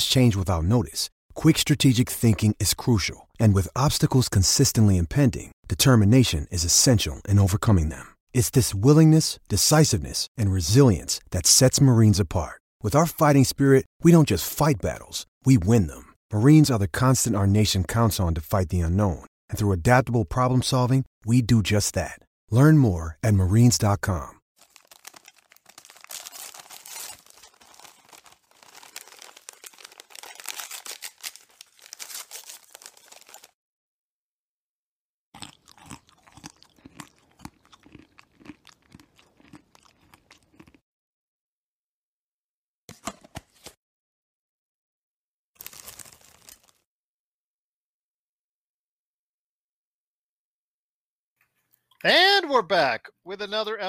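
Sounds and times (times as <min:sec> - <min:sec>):
speech: 0:00.0 - 0:24.4, 0:52.0 - 0:53.8
crisp crunching and munching on a snack: 0:24.6 - 0:33.6, 0:35.4 - 0:40.8, 0:45.6 - 0:46.8.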